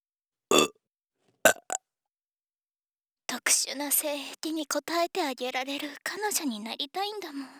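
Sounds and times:
person burping: 0:00.5 - 0:00.7, 0:01.5 - 0:01.8
speech: 0:03.5 - 0:07.5.

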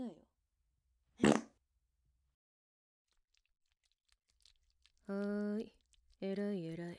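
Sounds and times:
fart: 0:01.2 - 0:01.6
speech: 0:05.1 - 0:06.9.

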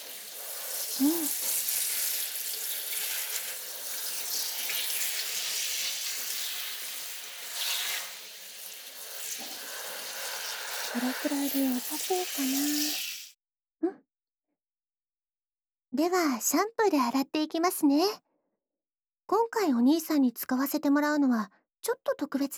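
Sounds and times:
running water rinsing oil from hair before shampooing: 0:00.0 - 0:13.3
speech: 0:01.0 - 0:01.5, 0:11.0 - 0:13.0, 0:16.0 - 0:18.2, 0:19.3 - 0:22.5.

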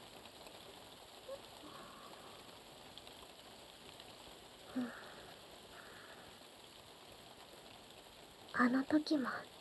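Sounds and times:
heavy rain drumming on a roof: 0:00.0 - 0:09.5
speech: 0:04.8 - 0:05.0, 0:08.6 - 0:09.5.

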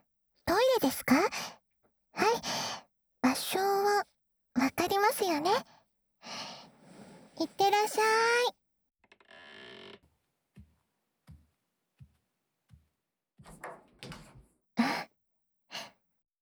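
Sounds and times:
speech: 0:00.8 - 0:01.6, 0:03.4 - 0:06.4, 0:07.4 - 0:08.6
door swinging open with a broadband rush: 0:13.4 - 0:14.5.

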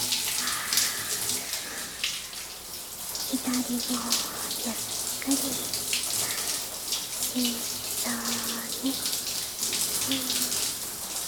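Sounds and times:
hot water pouring from a tap during a rinse: 0:00.0 - 0:11.2
speech: 0:03.3 - 0:05.9, 0:07.4 - 0:09.1, 0:10.1 - 0:10.4.

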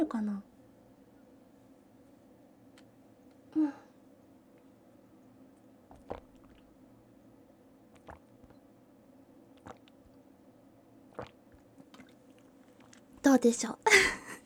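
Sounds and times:
speech: 0:00.0 - 0:00.5, 0:13.3 - 0:14.2
low hiss: 0:00.0 - 0:14.4
person deliberately gulping and swallowing water: 0:05.9 - 0:06.8, 0:07.9 - 0:08.6, 0:09.5 - 0:10.2, 0:11.1 - 0:13.1.

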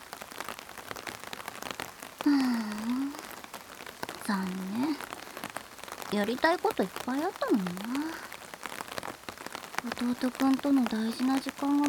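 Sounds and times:
steady rain: 0:00.0 - 0:11.8
speech: 0:02.2 - 0:02.9, 0:04.3 - 0:05.1, 0:06.1 - 0:08.3, 0:09.8 - 0:11.8.

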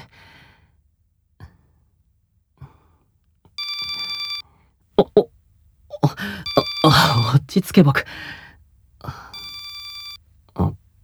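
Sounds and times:
phone electronic ringtone: 0:03.6 - 0:04.4, 0:06.0 - 0:08.1, 0:09.4 - 0:10.2
speech: 0:07.5 - 0:08.4.

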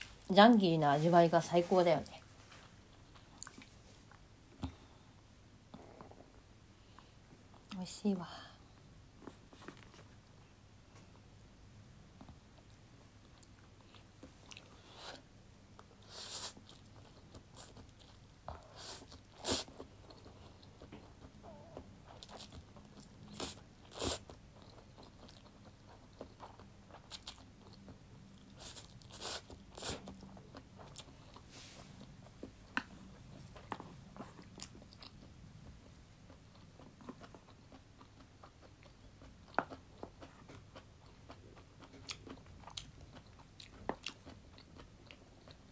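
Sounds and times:
speech: 0:00.3 - 0:02.2, 0:08.0 - 0:08.5
crunchy chewing of dried noodles: 0:15.8 - 0:45.7.

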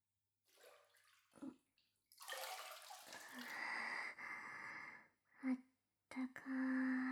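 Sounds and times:
hot water being poured over shoulders in bath: 0:00.5 - 0:03.8
speech: 0:06.2 - 0:07.0.

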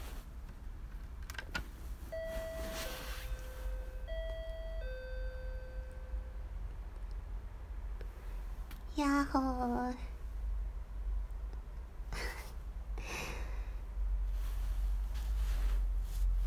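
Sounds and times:
faint outdoor noise: 0:00.0 - 0:16.4
electronic intercom doorbell four-note chime at a director's house: 0:02.1 - 0:06.5
speech: 0:09.0 - 0:10.1.

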